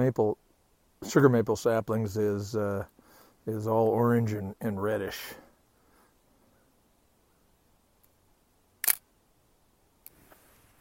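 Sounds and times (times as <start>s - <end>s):
speech: 0.0s - 0.4s, 1.0s - 5.4s
Nikon F3 film camera shutter release snapping on a forested hill: 8.8s - 9.0s.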